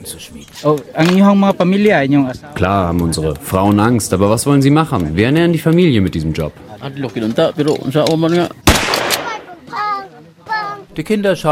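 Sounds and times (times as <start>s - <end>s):
speech: 0.0s - 8.7s, 11.0s - 11.4s
test gunshot fired into a sand-filled barrel: 8.6s - 9.5s.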